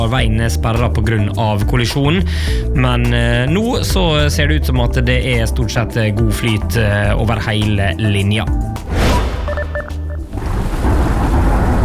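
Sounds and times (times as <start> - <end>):
speech: 0.0 - 8.9
electronic beeping tones: 9.4 - 10.3
deep loud rumble of thunder: 10.2 - 11.8
steady hissing rain sound effect: 10.3 - 11.8.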